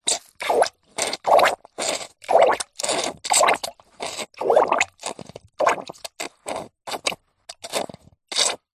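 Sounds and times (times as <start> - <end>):
hospital syringe sucking and squirting water in a bowl: 0.0 - 8.7.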